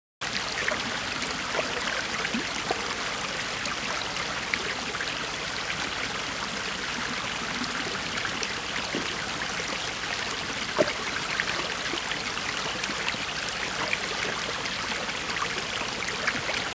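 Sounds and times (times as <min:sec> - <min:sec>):
medium water stream: 0:00.2 - 0:16.7.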